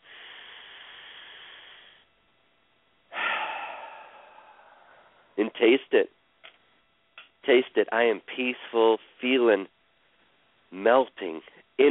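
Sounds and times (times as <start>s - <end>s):
deep breath in during a guided relaxation exercise: 0.0s - 2.1s, 3.1s - 5.4s
speech: 5.4s - 6.2s, 7.4s - 9.8s, 10.7s - 11.8s.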